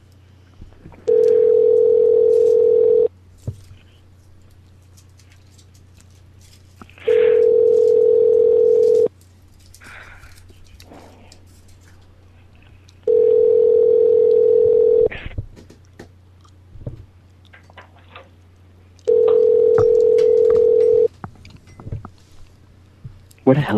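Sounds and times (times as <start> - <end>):
phone line ringing on outgoing call: 1.1 - 3.1, 7.1 - 9.1, 13.1 - 15.1, 19.1 - 21.1.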